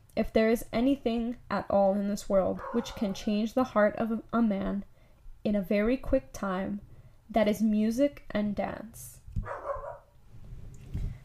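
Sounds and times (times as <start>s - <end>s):
speech: 0.2s - 9.6s
dog barking: 2.6s - 3.2s, 9.4s - 10.1s.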